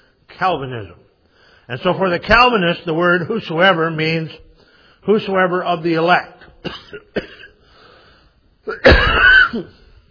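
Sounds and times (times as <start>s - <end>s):
speech: 0.4s - 1.1s, 1.7s - 4.4s, 5.0s - 7.4s, 8.7s - 9.8s
man coughing: 6.6s - 7.7s, 8.6s - 10.0s.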